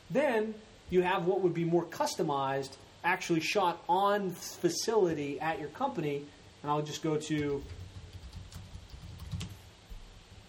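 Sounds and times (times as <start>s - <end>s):
low hum: 0.0s - 10.4s
speech: 0.1s - 7.8s
faint typing on a computer keyboard: 7.4s - 9.6s.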